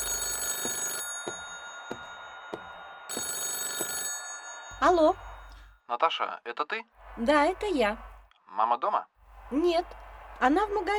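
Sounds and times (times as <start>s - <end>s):
telephone bell ringing: 0.0s - 5.8s
speech: 4.8s - 5.2s, 5.9s - 10.9s.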